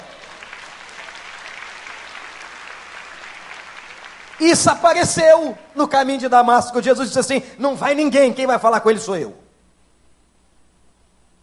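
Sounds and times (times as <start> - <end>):
audience applauding: 0.0 - 5.5
speech: 4.4 - 9.4.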